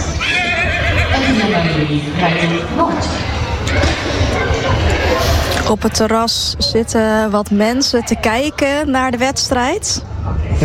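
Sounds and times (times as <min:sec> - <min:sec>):
outdoor noise: 0:00.0 - 0:10.6
horse whinnying at an equestrian competition beside a riding ring: 0:00.1 - 0:01.6
speech: 0:01.9 - 0:03.2, 0:05.7 - 0:10.6.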